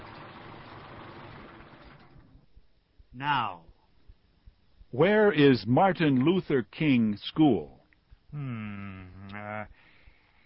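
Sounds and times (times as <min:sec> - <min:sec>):
car engine idling then switched off: 0:00.0 - 0:02.5
speech: 0:03.2 - 0:03.7, 0:04.9 - 0:09.0.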